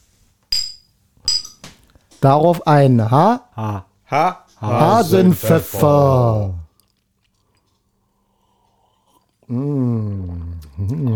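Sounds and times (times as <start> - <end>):
drinking glasses clinking in a toast: 0.5 - 1.6
speech: 2.2 - 6.6, 9.5 - 11.1.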